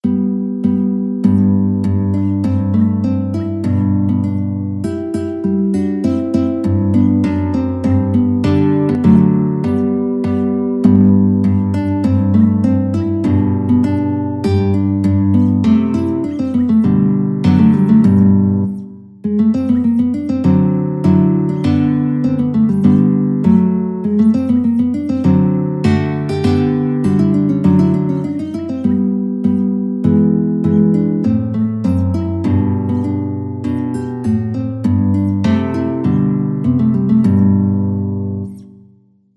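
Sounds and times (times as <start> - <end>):
guitar piece: 0.0 - 39.1.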